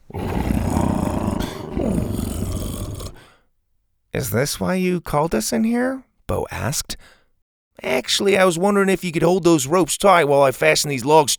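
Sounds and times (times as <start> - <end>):
large creature giving a deep loud rumbling purr as its head is rubbed: 0.1 - 3.3
speech: 4.2 - 7.2, 7.8 - 11.3.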